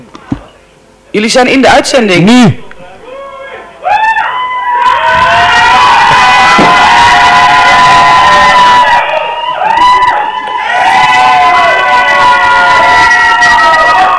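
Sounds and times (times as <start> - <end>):
speech: 1.2 - 2.6
group of people shouting and cheering: 2.8 - 14.1.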